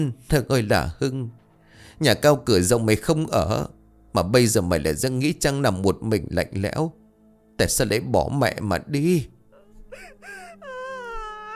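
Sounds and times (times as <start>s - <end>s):
speech: 0.0s - 7.0s, 7.6s - 10.7s
grieving mother wailing and sobbing over a coffin: 9.5s - 11.5s.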